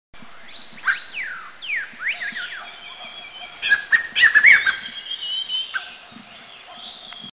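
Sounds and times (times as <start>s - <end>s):
Striated Laughingthrush singing in India: 0.6s - 6.9s.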